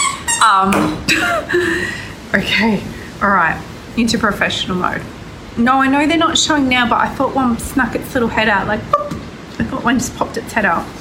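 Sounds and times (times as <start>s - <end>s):
squeaky toy being chewed by a puppy: 0.0s - 0.7s
speech: 0.4s - 10.9s.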